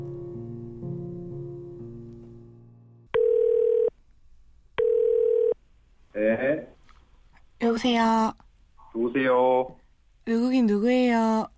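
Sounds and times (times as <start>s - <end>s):
soft melody: 0.0s - 3.2s
telephone tone of an outgoing call, two steady beeps: 3.2s - 3.9s, 4.8s - 5.6s
speech: 7.8s - 8.4s, 9.0s - 11.5s.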